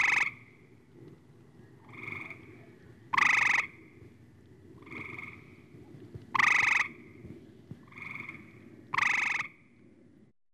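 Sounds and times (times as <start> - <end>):
frog croaking: 0.0 - 0.6, 1.8 - 3.9, 4.8 - 5.7, 6.3 - 7.2, 7.8 - 9.7.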